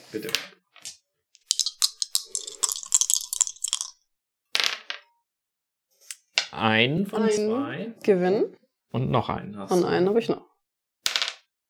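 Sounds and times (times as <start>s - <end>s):
speech: 0.1s - 0.6s, 6.6s - 10.5s
dice tumbling and clattering: 0.8s - 4.0s, 4.6s - 5.0s, 11.1s - 11.5s.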